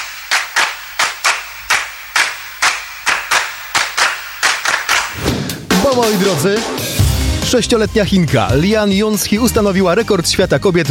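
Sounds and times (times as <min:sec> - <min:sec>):
rhythmic clapping: 0:00.0 - 0:06.8
speech: 0:06.0 - 0:06.9, 0:07.5 - 0:10.8.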